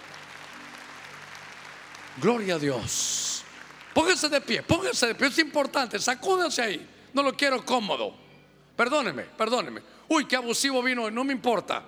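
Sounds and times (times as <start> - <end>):
large group of people clapping: 0.0 - 5.0
speech: 2.2 - 3.2, 4.0 - 8.2, 8.8 - 11.8.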